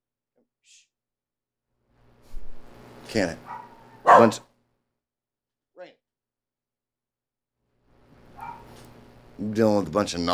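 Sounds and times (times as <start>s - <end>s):
speech: 3.1s - 3.5s, 4.2s - 4.5s, 9.4s - 10.3s
dog barking loudly: 3.4s - 4.5s, 8.4s - 8.8s
faint high yip: 3.5s - 4.4s, 8.4s - 8.7s.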